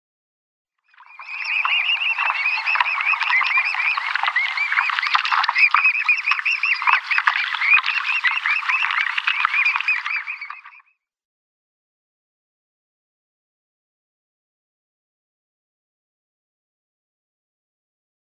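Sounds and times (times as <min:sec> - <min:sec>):
downy young Mute Swan calling: 0:01.0 - 0:10.8.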